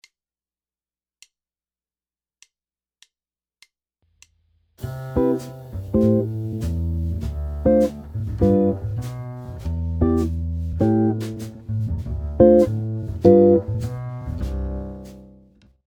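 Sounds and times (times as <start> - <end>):
guitar playing a jazz chord progression: 4.8 - 15.4.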